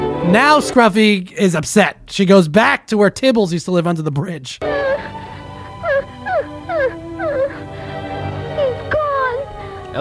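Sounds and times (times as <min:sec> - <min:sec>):
speech: 0:00.2 - 0:04.9
dog whimpering: 0:04.6 - 0:07.7, 0:08.6 - 0:09.8.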